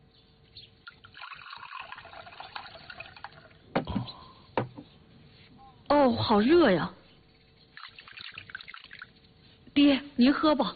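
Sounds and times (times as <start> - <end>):
water being poured into a cup: 0.9 - 3.6, 7.7 - 9.2
speech: 6.1 - 7.0, 9.8 - 10.7.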